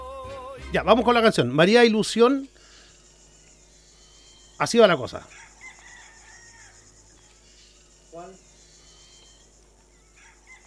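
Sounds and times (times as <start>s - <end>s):
faint hum: 0.0s - 10.6s
speech: 0.7s - 2.5s, 4.6s - 5.5s
bird calls: 1.3s - 10.6s
rooster crowing: 4.0s - 7.4s, 8.7s - 10.6s.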